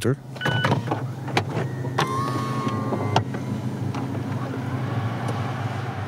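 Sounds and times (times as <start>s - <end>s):
speech: 0.0s - 1.1s
mechanical clicks and clunks of a car roof mechanism: 0.0s - 4.3s
low car engine hum: 0.0s - 6.0s
electric motor whirring as a convertible car roof opens: 1.5s - 5.5s.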